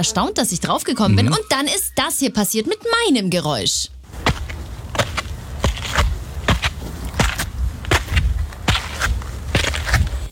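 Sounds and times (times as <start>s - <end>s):
speech: 0.0s - 4.3s
footsteps climbing many stairs up a stepped hill: 4.1s - 10.3s.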